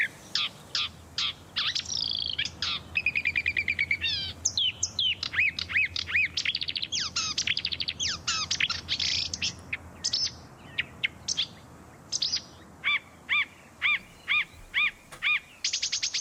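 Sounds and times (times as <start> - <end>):
marsh warbler singing, mimicking other bird species: 0.0 - 16.1.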